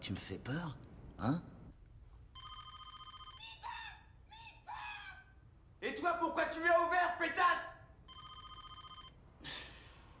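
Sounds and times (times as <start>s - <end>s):
speech: 0.1s - 1.6s, 6.0s - 7.7s
telephone ringing unanswered with a pulsing electronic ring: 2.4s - 3.4s, 8.1s - 9.2s.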